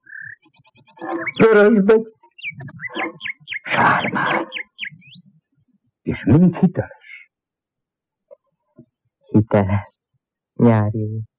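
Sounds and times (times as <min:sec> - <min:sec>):
mechanical bird-call device imitating a blackbird call: 0:00.0 - 0:05.2
speech: 0:01.0 - 0:02.8, 0:03.8 - 0:04.5, 0:06.2 - 0:07.0, 0:09.3 - 0:10.0, 0:10.6 - 0:11.3.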